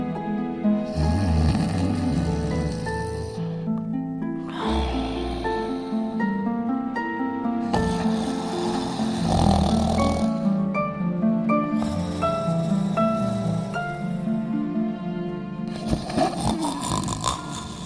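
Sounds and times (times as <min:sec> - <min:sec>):
sustained music: 0:00.0 - 0:17.8
loud rasping snoring: 0:00.8 - 0:03.6, 0:04.5 - 0:06.3, 0:07.6 - 0:10.6, 0:11.8 - 0:14.3, 0:15.7 - 0:17.8.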